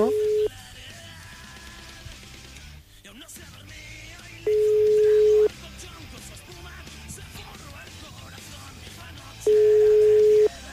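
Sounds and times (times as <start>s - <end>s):
telephone tone on a live call that is not connecting: 0.0s - 0.5s, 4.5s - 5.5s, 9.5s - 10.6s.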